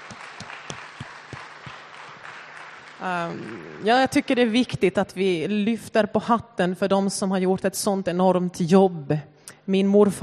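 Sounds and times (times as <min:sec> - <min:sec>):
sharp individual claps: 0:00.0 - 0:03.8
audience applauding a veteran: 0:00.0 - 0:04.3
speech: 0:03.0 - 0:10.2.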